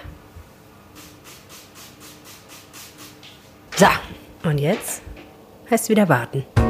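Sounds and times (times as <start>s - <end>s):
spray bottle misting Berliner doughnut dough: 1.0s - 3.4s
speech: 3.8s - 5.1s, 5.7s - 6.5s.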